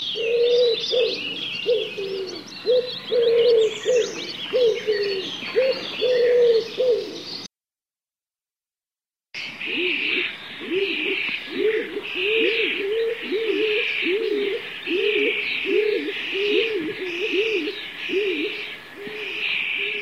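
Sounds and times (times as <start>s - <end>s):
stock dove cooing: 0.0s - 7.5s, 9.6s - 20.0s.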